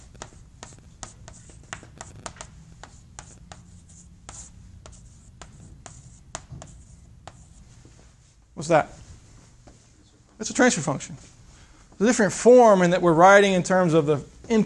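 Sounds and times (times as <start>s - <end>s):
writing on a board: 0.0s - 7.6s
speech: 8.6s - 9.0s, 10.4s - 11.4s, 12.0s - 14.6s.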